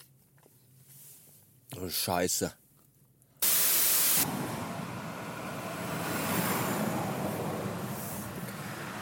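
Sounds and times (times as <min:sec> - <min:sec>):
speech: 0:01.8 - 0:02.6
sudden harsh burst of noise: 0:03.4 - 0:04.7
motorway traffic rushing past: 0:03.6 - 0:09.0.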